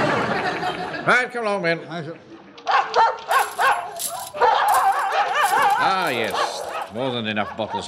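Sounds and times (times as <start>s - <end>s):
laughter: 0.0s - 1.3s
speech: 1.0s - 2.3s, 5.8s - 7.8s
dogs barking and yelping in pens: 2.7s - 7.8s.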